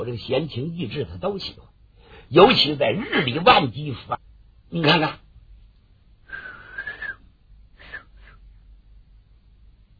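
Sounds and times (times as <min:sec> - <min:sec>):
speech: 0:00.0 - 0:01.7, 0:02.3 - 0:05.2
person whistling to a trained white parrot: 0:06.3 - 0:07.2, 0:07.8 - 0:08.4.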